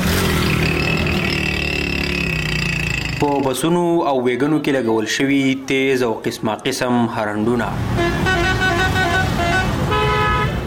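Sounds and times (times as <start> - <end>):
motorcycles with punctured silencers roaring: 0.0 - 4.7, 7.5 - 10.6
rickshaw engines: 0.0 - 6.8, 7.4 - 10.6
speech: 3.2 - 8.3.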